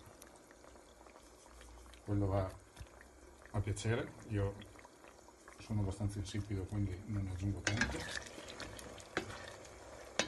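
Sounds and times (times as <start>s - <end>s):
onion and bell pepper frying in a pan with salt: 0.0s - 10.2s
scraping strokes of stirring in a pan: 1.1s - 2.1s, 7.5s - 10.2s
speech: 2.1s - 2.6s, 3.6s - 4.7s, 5.6s - 8.4s.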